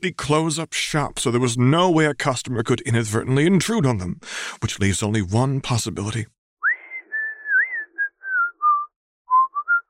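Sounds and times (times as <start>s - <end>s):
speech: 0.0s - 6.4s
man whistling a bright tune in a bakery: 6.6s - 9.8s.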